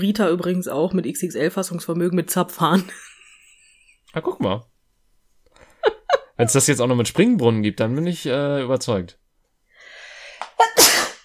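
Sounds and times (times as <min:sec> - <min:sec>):
speech: 0:00.0 - 0:03.1, 0:04.1 - 0:04.7, 0:06.4 - 0:09.2
person sneezing: 0:10.6 - 0:11.2.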